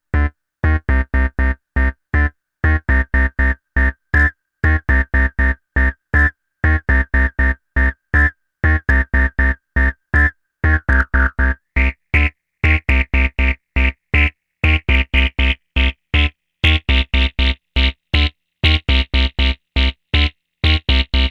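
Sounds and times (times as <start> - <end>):
acid synth loop: 0.2 - 21.2.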